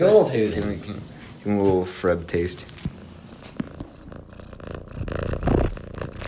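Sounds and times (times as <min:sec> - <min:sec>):
speech: 0:00.0 - 0:02.9
cat purring loudly while being gently caressed: 0:02.7 - 0:06.2.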